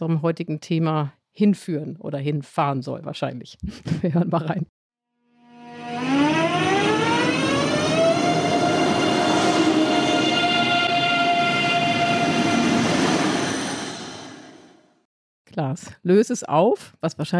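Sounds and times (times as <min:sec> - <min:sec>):
speech: 0:00.0 - 0:04.7, 0:15.6 - 0:17.3
German ICE high-speed train pulling away: 0:05.5 - 0:15.1.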